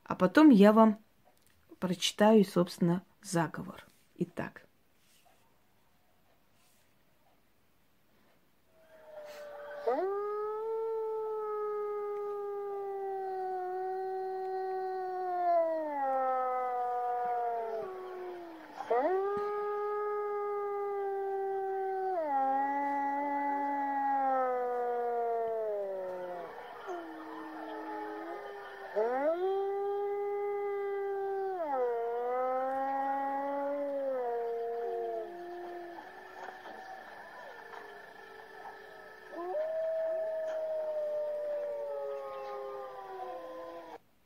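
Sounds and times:
speech: 0.1s - 1.0s, 1.8s - 4.7s
wolves howling in chorus: 8.8s - 44.0s.

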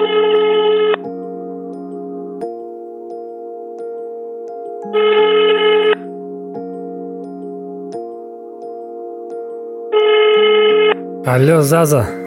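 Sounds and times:
ringing tone of an outgoing phone call: 0.0s - 1.1s, 4.8s - 6.2s, 9.9s - 12.2s
speech: 11.3s - 12.2s.

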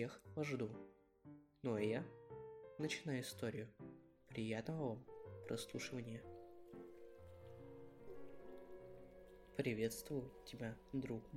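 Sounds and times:
speech: 0.0s - 1.0s, 1.6s - 2.2s, 2.8s - 6.3s, 9.6s - 11.3s
gentle sustained musical tones: 5.2s - 11.3s
soft steady rain pattering: 5.5s - 11.3s.

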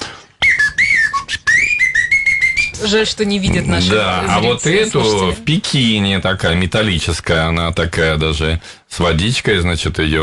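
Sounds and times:
small souvenir whistle blown in shrill trilling blasts: 0.4s - 3.0s
speech: 2.8s - 10.2s.

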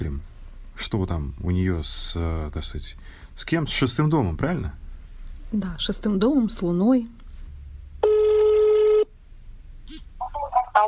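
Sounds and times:
speech: 0.8s - 4.8s, 5.5s - 7.2s
telephone call dialing tone: 8.0s - 9.1s.

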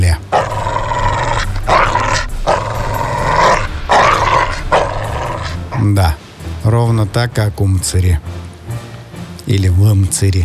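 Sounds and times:
shepherd dog growling and snarling while fighting a man: 0.3s - 5.8s
speech: 7.1s - 8.4s, 9.5s - 10.4s.

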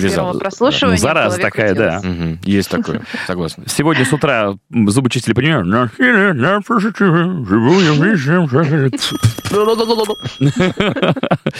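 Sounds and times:
speech: 0.0s - 11.5s
people laughing: 2.6s - 4.4s, 6.0s - 11.5s
old-style analog telephone bell ringing: 9.0s - 11.1s.

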